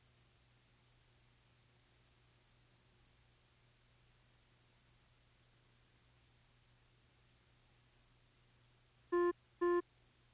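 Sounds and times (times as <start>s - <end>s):
faint steady hum: 0.0s - 10.3s
telephone ringing with electronic tone bursts: 9.2s - 9.8s.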